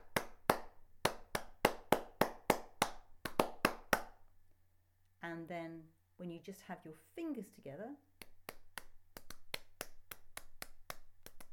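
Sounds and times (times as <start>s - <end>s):
single person clapping with flat palms together: 0.0s - 4.2s, 8.2s - 11.5s
speech: 5.5s - 8.1s.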